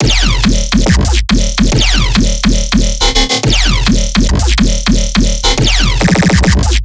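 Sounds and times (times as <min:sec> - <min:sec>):
riddim dubstep bass loop in E: 0:00.0 - 0:06.8.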